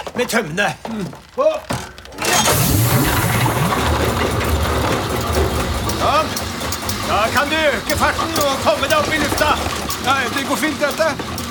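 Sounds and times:
speech: 0:00.2 - 0:02.6, 0:06.0 - 0:06.4, 0:07.1 - 0:11.4
reindeer sled simulator low rumbling hum: 0:02.5 - 0:10.0.

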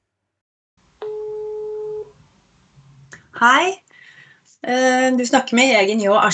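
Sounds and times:
telephone ringback tone while a call connects: 0:01.0 - 0:02.1
speech: 0:03.4 - 0:03.8, 0:04.6 - 0:06.3.

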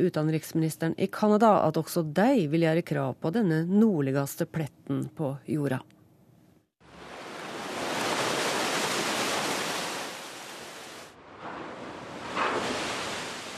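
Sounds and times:
speech: 0:00.0 - 0:06.0
ship grinding through sea ice: 0:07.5 - 0:13.5.

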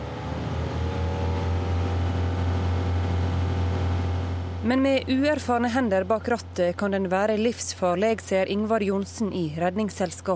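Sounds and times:
rigid inflatable boat engine roaring at high speed: 0:00.0 - 0:10.3
speech: 0:04.6 - 0:10.3.

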